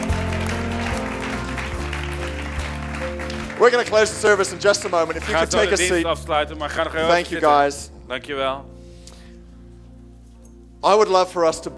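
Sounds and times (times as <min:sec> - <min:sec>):
audience applause at a church service: 0:00.0 - 0:06.1
speech: 0:03.6 - 0:08.8, 0:10.8 - 0:11.7.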